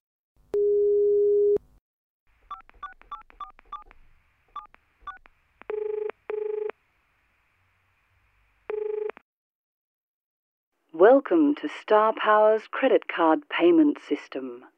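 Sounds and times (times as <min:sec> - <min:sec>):
steady phone tone: 0:00.6 - 0:01.6, 0:04.6 - 0:06.8, 0:08.7 - 0:09.2
speech: 0:11.0 - 0:14.7.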